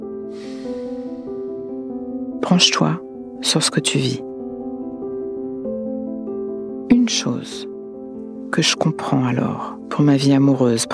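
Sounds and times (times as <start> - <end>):
slow airy breath out: 0.3 - 1.5
speech: 2.5 - 4.3, 7.1 - 7.7, 8.5 - 10.9.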